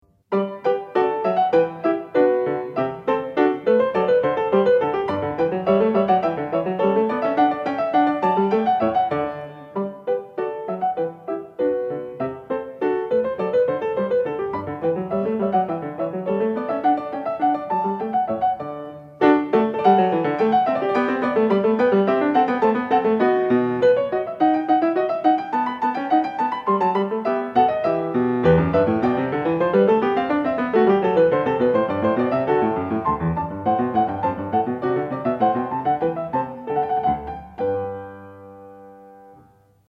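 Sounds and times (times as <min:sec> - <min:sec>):
baroque keyboard gavotte: 0:00.3 - 0:39.6.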